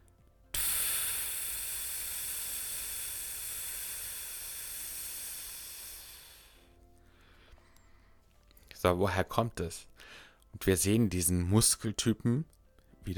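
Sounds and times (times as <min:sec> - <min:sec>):
air escaping from a tire: 0:00.5 - 0:06.7
speech: 0:08.8 - 0:13.1.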